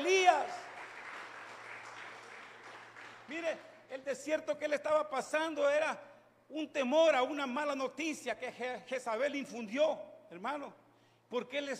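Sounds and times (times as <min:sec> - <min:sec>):
audience applauding: 0:00.0 - 0:03.7
faint low electrical hum: 0:00.0 - 0:11.7
speech: 0:03.3 - 0:11.7.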